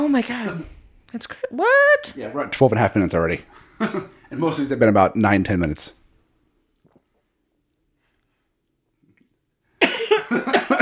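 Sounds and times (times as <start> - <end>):
speech: 0.0 - 6.0
person coughing after food went down the wrong way: 9.8 - 10.8.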